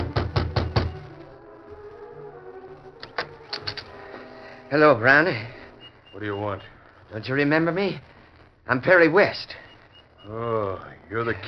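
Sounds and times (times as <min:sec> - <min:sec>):
knocking on a wooden cabin door: 0:00.0 - 0:01.1
speech: 0:04.7 - 0:05.6, 0:06.2 - 0:08.1, 0:08.7 - 0:09.6, 0:10.2 - 0:11.4.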